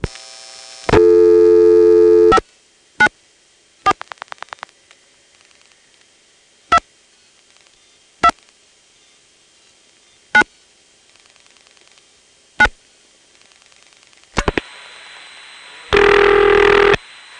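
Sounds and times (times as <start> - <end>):
loud steady telephone tone from a register sender: 0.0 - 2.4, 14.5 - 17.3
rapid clicks of a telephone call dialed through a register sender: 3.9 - 6.1, 11.0 - 12.1, 13.3 - 14.5.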